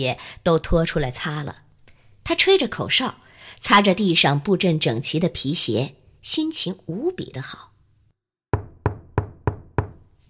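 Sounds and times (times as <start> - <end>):
speech: 0.0 - 1.6, 2.3 - 7.7
knocking on a door: 8.5 - 10.0.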